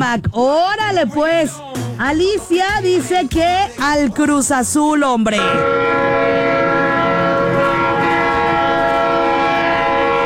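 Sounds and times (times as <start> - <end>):
speech: 0.1 - 6.3
train rumbling past near Las Américas: 5.4 - 10.2.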